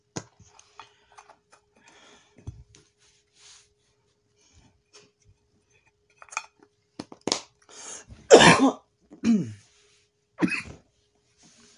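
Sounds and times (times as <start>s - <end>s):
person clearing throat: 8.3s - 9.7s, 10.4s - 10.8s
person coughing: 8.3s - 9.7s, 10.4s - 10.8s.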